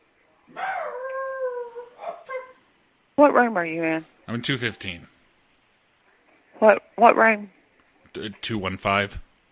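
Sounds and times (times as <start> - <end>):
dog howling: 0.5 - 2.6
speech: 3.2 - 5.1, 6.6 - 7.6, 8.2 - 9.2.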